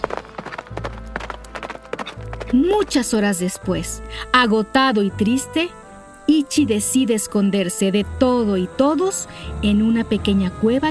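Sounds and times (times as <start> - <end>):
hoofbeats galloping away: 0.0 - 4.0
speech: 2.5 - 10.9.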